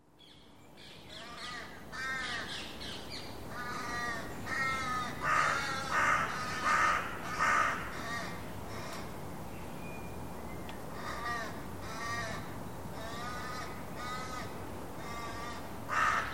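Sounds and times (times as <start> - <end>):
bird cawing: 1.1 - 2.8, 3.5 - 9.1, 10.9 - 16.3.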